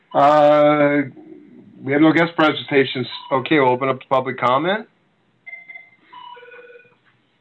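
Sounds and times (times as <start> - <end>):
speech: 0.1 - 1.2, 1.8 - 4.9
telephone ringing with melodic electronic ringtone: 5.4 - 7.0.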